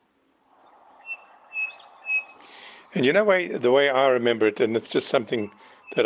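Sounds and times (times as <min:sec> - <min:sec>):
Chinspot Batis clear high whistled notes: 0:00.6 - 0:02.9, 0:05.4 - 0:06.0
speech: 0:02.9 - 0:06.0.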